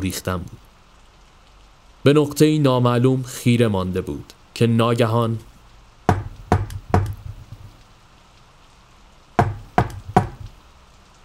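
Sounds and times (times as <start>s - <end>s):
speech: 0.0s - 0.6s, 2.0s - 5.5s
faint steady hiss: 0.0s - 11.2s
firm knocks on a wooden door: 6.1s - 7.7s, 9.4s - 10.6s.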